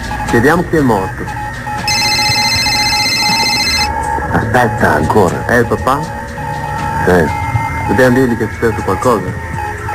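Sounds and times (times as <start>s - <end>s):
speech: 0.3s - 1.4s, 4.3s - 6.2s, 7.0s - 9.5s
mobile phone ringing with a continuous electronic ringtone: 1.8s - 4.0s.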